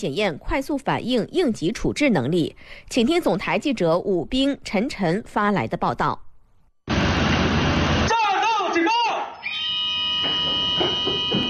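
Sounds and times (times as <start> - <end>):
speech: 0.0 - 6.2
rushing noise: 6.9 - 8.1
combat alarm on a China Coast Guard ship during a drill: 6.9 - 11.4.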